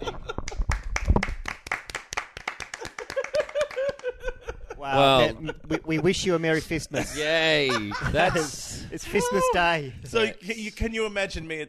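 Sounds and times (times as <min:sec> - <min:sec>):
laughter: 0:00.0 - 0:00.6, 0:02.8 - 0:09.6
light polite golf clapping from a few pairs of hands: 0:00.4 - 0:04.1
speech: 0:04.9 - 0:11.6.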